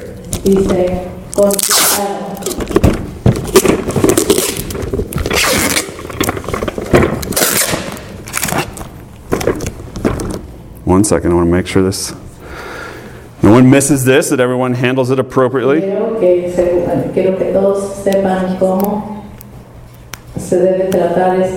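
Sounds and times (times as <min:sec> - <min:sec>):
speech: 0:00.5 - 0:03.0, 0:10.9 - 0:12.3, 0:13.4 - 0:19.1, 0:20.5 - 0:21.5
fragile packing tape ripping off its roll: 0:01.3 - 0:10.4.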